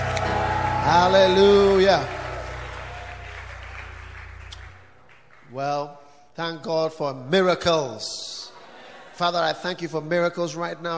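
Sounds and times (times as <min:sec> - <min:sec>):
low sustained music: 0:00.0 - 0:04.5
crowd clapping and cheering: 0:00.0 - 0:06.1
speech: 0:00.9 - 0:02.2, 0:05.5 - 0:08.4, 0:09.2 - 0:10.9.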